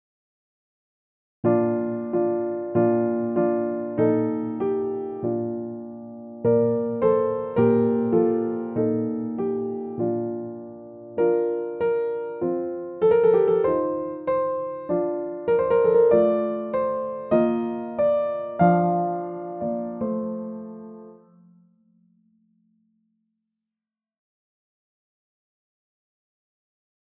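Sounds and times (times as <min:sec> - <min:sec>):
virtual piano: 0:01.4 - 0:21.9.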